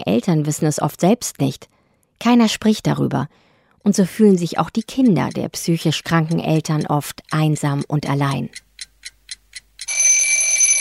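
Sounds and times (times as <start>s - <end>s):
speech: 0.0s - 8.6s
electronic alarm clock beeping and ringing: 9.8s - 10.7s.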